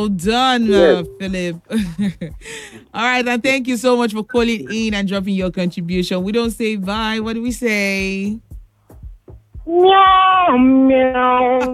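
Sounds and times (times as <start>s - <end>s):
speech: 0.0s - 8.5s, 9.6s - 11.7s
person imitating a cat meow: 9.7s - 11.7s.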